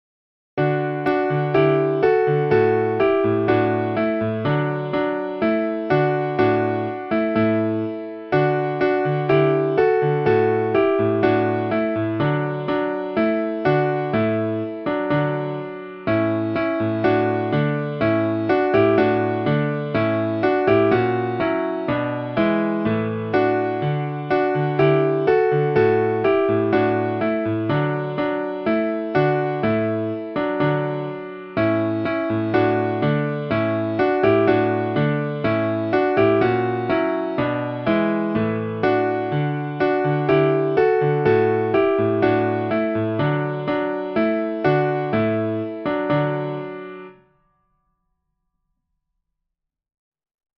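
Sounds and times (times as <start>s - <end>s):
solo piano piece: 0.6s - 47.3s.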